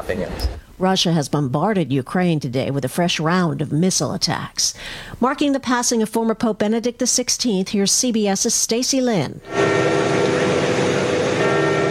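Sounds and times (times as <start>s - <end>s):
speech: 0.1s - 10.0s
church bells ringing in a square to mark a pope's death: 9.5s - 11.9s.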